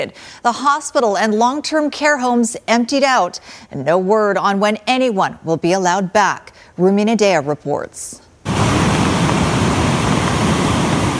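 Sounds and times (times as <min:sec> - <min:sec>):
speech: 0:00.0 - 0:08.2
raging floodwater rushing with a loud roar: 0:08.5 - 0:11.1.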